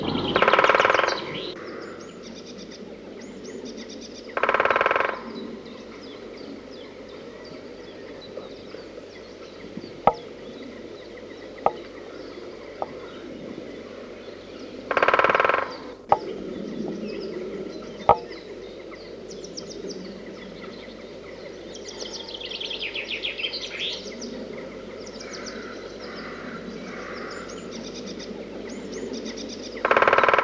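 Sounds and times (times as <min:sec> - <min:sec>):
great spotted woodpecker drumming: 0:00.0 - 0:01.6, 0:04.3 - 0:05.3, 0:09.6 - 0:10.5, 0:11.1 - 0:13.1, 0:14.9 - 0:16.4, 0:18.0 - 0:18.4, 0:29.8 - 0:30.4
great spotted woodpecker sharp single call notes: 0:00.0 - 0:02.5, 0:03.8 - 0:06.3, 0:08.0 - 0:13.2, 0:14.8 - 0:16.6, 0:17.3 - 0:19.0, 0:29.6 - 0:30.4.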